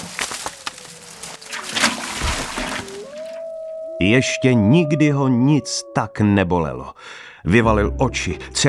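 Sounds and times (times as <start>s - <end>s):
water churning and sloshing: 0.0s - 3.6s
splash of something dropping into water: 1.4s - 3.4s
speech: 4.0s - 8.6s.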